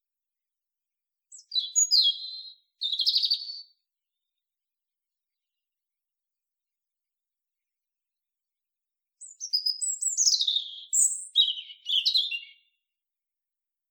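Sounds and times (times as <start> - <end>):
European robin (Erithacus rubecula) singing high sliding whistles and scratchy notes: 1.3 - 3.7, 9.2 - 12.7.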